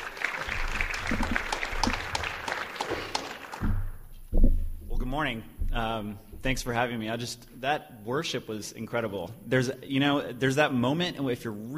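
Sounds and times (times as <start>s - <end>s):
audience applauding in a large room: 0.0s - 4.0s
low thump: 3.6s - 6.7s
speech: 5.2s - 11.7s.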